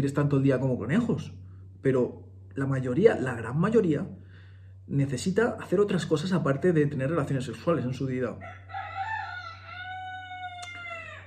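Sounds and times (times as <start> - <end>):
speech: 0.0 - 4.2, 4.9 - 8.9
steady low electrical hum: 0.0 - 11.2
rooster crowing: 8.4 - 11.2.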